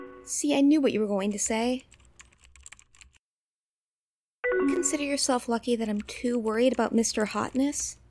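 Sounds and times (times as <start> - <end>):
speech: 0.2 - 2.0, 4.9 - 8.0
typing on a computer keyboard: 1.4 - 3.2, 5.8 - 7.9.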